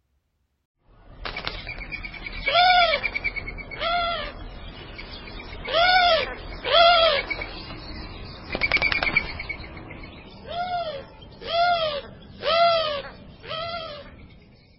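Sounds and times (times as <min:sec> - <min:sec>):
Eurasian collared dove giving harsh nasal mewing calls: 0:01.4 - 0:04.4, 0:05.6 - 0:07.5, 0:10.4 - 0:14.2.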